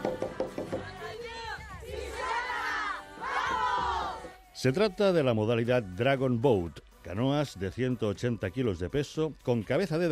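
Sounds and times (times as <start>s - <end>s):
women's rowing team shouting battle cry: 0.8s - 4.4s
speech: 4.6s - 10.1s.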